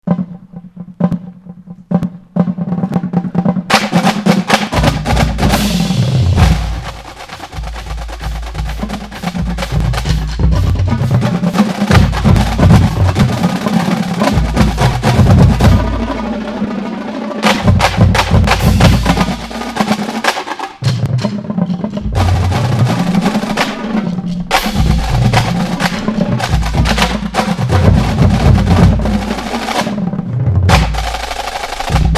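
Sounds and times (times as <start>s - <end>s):
drum corps drum line playing: 0.0s - 32.1s.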